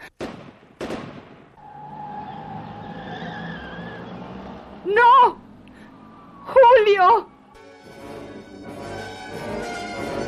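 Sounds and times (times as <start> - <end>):
sharp loud bangs: 0.2 - 1.6
car tires screeching: 1.6 - 7.5.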